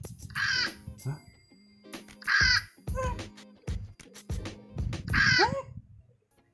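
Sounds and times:
child imitating a bird with crow-like caws: 0.4s - 0.8s, 2.3s - 3.2s, 5.1s - 5.7s.

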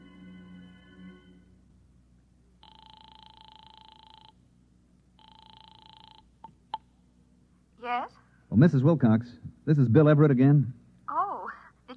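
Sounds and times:
telephone ringing over the line from a phone booth to a home: 2.6s - 4.4s, 5.2s - 6.6s
speech: 7.9s - 10.8s.

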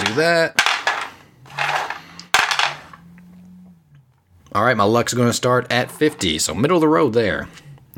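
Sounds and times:
three six-sided dice rolled across a hard surface for a game: 0.0s - 2.9s
speech: 0.2s - 0.6s, 4.5s - 7.9s.

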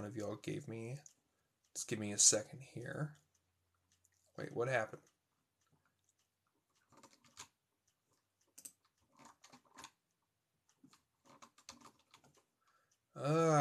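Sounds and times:
speech: 0.1s - 1.2s, 1.8s - 3.2s, 4.4s - 5.1s, 13.2s - 13.5s
typing on a computer keyboard: 6.1s - 10.0s, 10.7s - 12.5s.

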